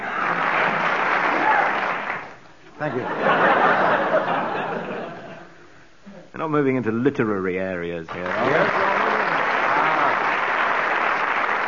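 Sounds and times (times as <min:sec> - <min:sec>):
studio audience applause: 0:00.0 - 0:02.4, 0:08.1 - 0:11.6
speech: 0:02.8 - 0:03.4, 0:06.4 - 0:09.0
laughter: 0:02.8 - 0:05.5.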